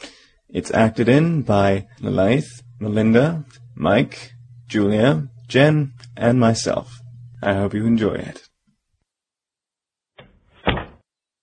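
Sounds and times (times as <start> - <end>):
speech: 0.5 - 8.5
office door being gently closed: 10.2 - 11.0.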